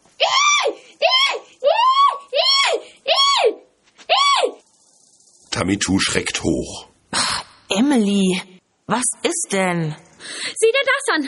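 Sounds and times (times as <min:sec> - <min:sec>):
woman screaming high-pitched at full force: 0:00.2 - 0:04.6
speech: 0:05.6 - 0:06.9, 0:07.8 - 0:10.1.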